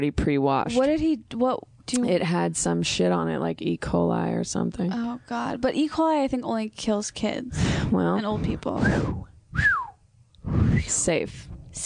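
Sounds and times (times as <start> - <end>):
speech: 0.0 - 9.8, 10.5 - 11.8
person whistling a downward-gliding note: 8.8 - 10.8.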